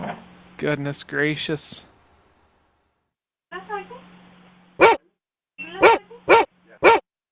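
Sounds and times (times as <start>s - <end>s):
speech: 0.6s - 1.9s
dogs barking: 4.8s - 5.0s, 5.8s - 7.0s.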